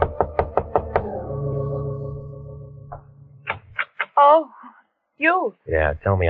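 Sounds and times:
knocking on a door: 0.0 - 1.1
lingering resonant hum: 0.0 - 5.4
speech: 4.4 - 4.6, 5.2 - 6.2.

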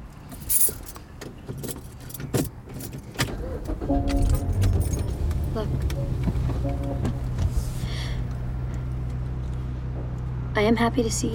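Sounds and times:
keys jingling: 0.3 - 1.0, 1.6 - 5.5
car engine starting: 0.3 - 10.6
motorized car window rolling down: 1.6 - 7.9
speech: 10.6 - 11.3.

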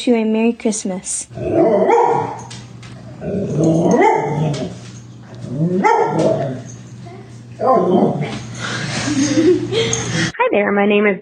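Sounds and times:
speech: 0.0 - 2.6, 3.2 - 4.8, 5.5 - 6.6, 7.6 - 11.2
dog growling and barking: 1.3 - 8.5
laughter: 8.2 - 10.3.

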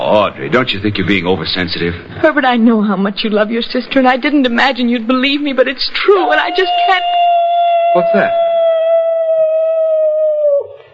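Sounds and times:
speech: 0.1 - 7.2, 7.9 - 8.4
long steady dog howl: 6.2 - 10.9.

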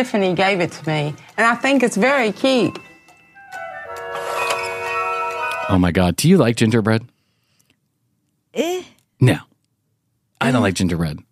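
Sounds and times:
speech: 0.0 - 2.9, 5.7 - 7.1, 8.5 - 9.5, 10.4 - 11.3
novelty clock ticking: 0.0 - 5.9
novelty clock tinkling chime melody: 1.8 - 5.9.

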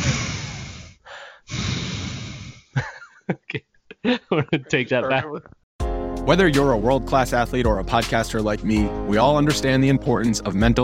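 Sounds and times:
heavy breathing into a microphone: 0.0 - 2.8
quick sharp snorts: 0.0 - 2.8
laughter: 2.8 - 5.6
speech: 3.3 - 5.6, 6.2 - 10.8.

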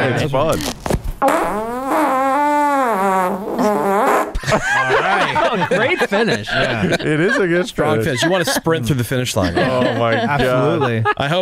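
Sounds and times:
speech: 0.1 - 1.7, 4.5 - 11.3
recorded fart sound played from phone: 0.7 - 4.4
laughter: 4.4 - 11.3.

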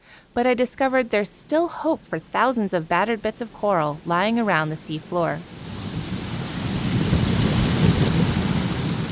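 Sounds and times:
gusting wind on coastal dune: 0.3 - 9.1
speech: 0.4 - 5.6
ocean surf on coastal dune: 1.5 - 9.1
wind buffeting the microphone: 5.4 - 9.1.

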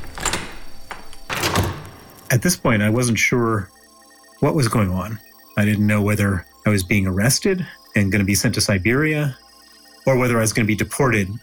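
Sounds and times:
cell door lock clattering as it is secured: 0.0 - 2.3
heavy cell door in an airport basement detention center sliding and banging shut: 0.0 - 2.3
speech: 2.3 - 3.8, 4.4 - 9.4, 10.0 - 11.4.

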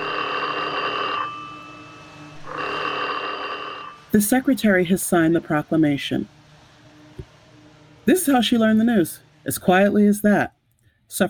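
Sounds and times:
old-fashioned telephone bell ringing in an office in New York: 0.0 - 4.0
speech: 4.1 - 6.4, 8.0 - 11.2.

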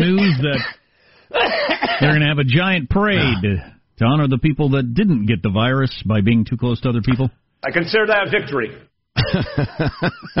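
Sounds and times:
person coughing: 0.0 - 2.2, 3.1 - 3.7
speech: 0.4 - 10.3
laughter: 9.2 - 10.3.

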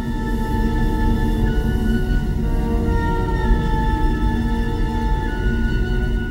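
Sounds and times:
uneasy orchestral film score motif: 0.0 - 6.2.

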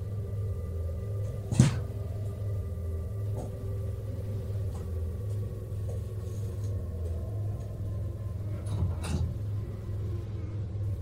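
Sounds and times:
constant low rumbling hum: 0.0 - 10.9
faint footsteps walking to a bedroom door: 1.5 - 7.8.

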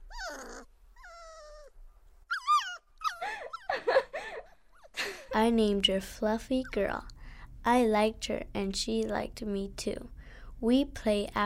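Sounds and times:
dog whimpering: 0.0 - 3.9
speech: 5.4 - 11.4.

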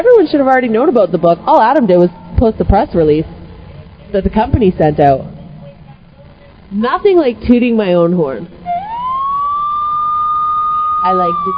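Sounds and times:
speech: 0.0 - 3.4, 4.1 - 5.3, 6.7 - 8.7, 11.0 - 11.5
police siren wailing: 8.6 - 11.5.

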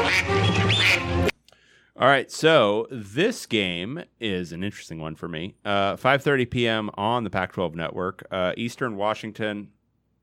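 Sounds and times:
loud nasal buzzy duck quack sound effect for a football team: 0.0 - 1.3
speech: 2.0 - 9.8.

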